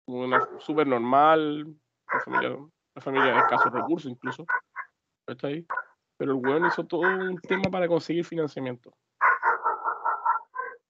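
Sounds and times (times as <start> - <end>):
speech: 0.1 - 4.6, 5.3 - 9.0
dog barking: 0.3 - 0.7, 2.1 - 4.9, 5.7 - 7.3, 9.2 - 10.8.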